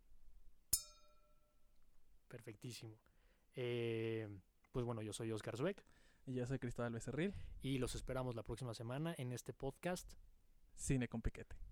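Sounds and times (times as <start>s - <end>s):
glasses clinking during a toast: 0.8s - 1.4s
speech: 2.3s - 11.6s.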